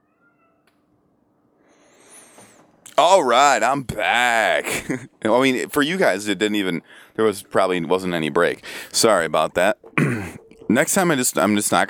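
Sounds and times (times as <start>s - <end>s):
cat meowing: 0.0s - 0.7s
faint hum: 0.0s - 11.8s
speech: 3.0s - 11.8s.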